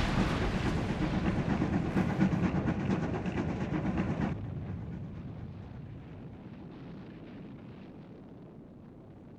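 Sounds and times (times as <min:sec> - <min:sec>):
heavy train wheels clattering as it pulls away: 0:00.1 - 0:04.4.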